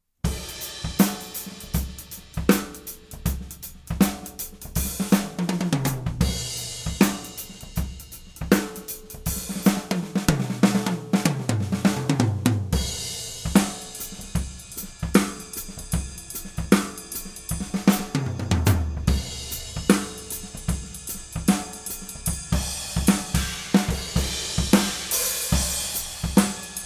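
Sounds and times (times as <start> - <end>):
whole drum kit playing recorded through overhead microphones: 0.2 - 26.8.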